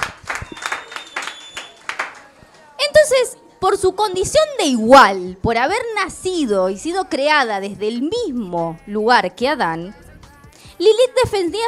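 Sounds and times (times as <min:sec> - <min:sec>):
applause from a small group: 0:00.0 - 0:02.4
speech: 0:03.1 - 0:10.0, 0:10.8 - 0:11.6.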